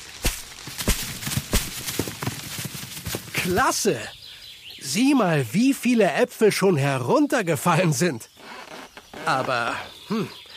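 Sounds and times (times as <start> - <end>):
light footsteps: 0.0 - 3.6
heavy feet stomping on the ground: 0.2 - 3.4
speech: 3.4 - 4.2, 4.8 - 8.3, 9.3 - 10.4.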